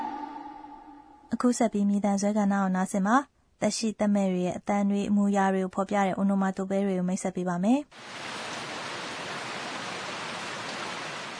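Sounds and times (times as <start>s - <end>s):
speech: 1.3s - 8.4s
steady rainfall: 8.0s - 11.3s.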